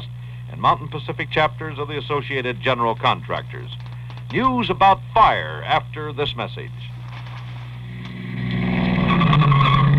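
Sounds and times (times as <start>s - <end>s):
car engine drone: 0.0s - 9.9s
speech: 0.6s - 6.9s
car tires squealing while cornering: 8.6s - 9.9s.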